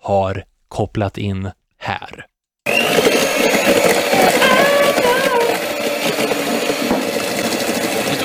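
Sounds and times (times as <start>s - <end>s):
speech: 0.1s - 2.3s
electric hand mixer whirring: 2.7s - 8.2s.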